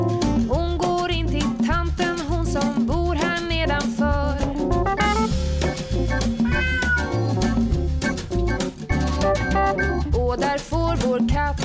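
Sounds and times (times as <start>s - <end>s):
loud bouncy musical backing with steady bass and rhythm: 0.0s - 11.6s
cat meowing: 5.1s - 8.2s.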